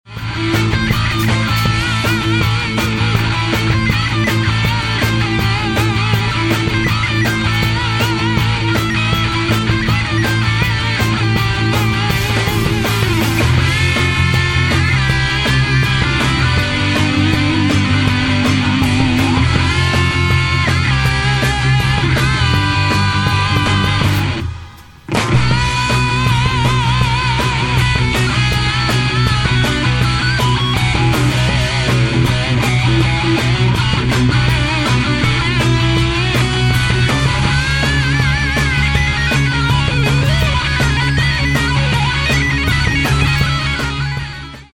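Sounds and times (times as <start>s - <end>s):
guitar: 0.0s - 44.7s
rock song: 0.0s - 44.7s.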